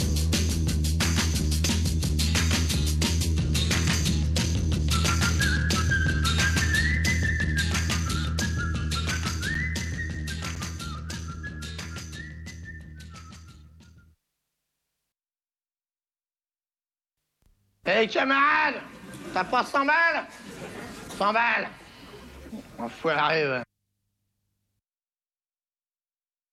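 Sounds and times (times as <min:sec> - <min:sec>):
steady instrumental music: 0:00.0 - 0:14.1
person whistling a clear high melody while walking away: 0:04.9 - 0:14.2
speech: 0:17.9 - 0:21.8, 0:22.8 - 0:23.7
laughter: 0:18.8 - 0:23.2.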